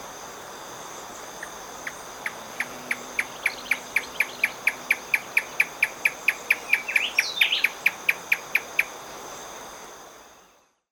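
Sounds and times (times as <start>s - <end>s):
constant high insect hum: 0.0s - 10.9s
Marañón crescentchest chipping song in Ecuador: 1.4s - 8.8s
bird twittering: 2.2s - 8.4s.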